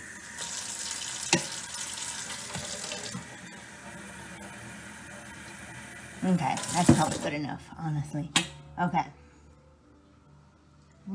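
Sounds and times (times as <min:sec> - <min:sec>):
water pouring into a tea kettle for coffee: 0:00.0 - 0:07.4
speech: 0:06.2 - 0:09.2.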